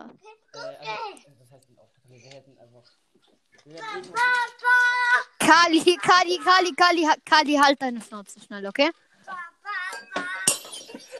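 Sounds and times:
speech: 2.1 - 9.4
glass shattering with tinkling fragments: 9.9 - 11.1.

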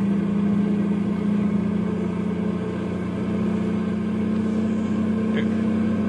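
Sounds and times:
heavy truck engine droning while driving downhill: 0.0 - 6.0.

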